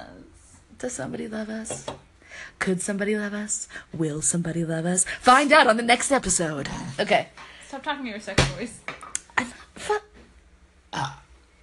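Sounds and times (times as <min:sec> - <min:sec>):
speech: 0:00.8 - 0:10.1
person burping: 0:10.9 - 0:11.3.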